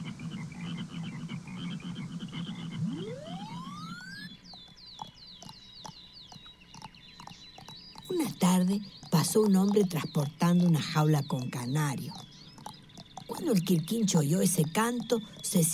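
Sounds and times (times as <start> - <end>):
chorus of frogs croaking: 0.0 - 15.7
quick repeated chirps: 0.5 - 15.7
rising whistle: 2.8 - 4.4
speech: 8.4 - 12.3, 13.4 - 15.7.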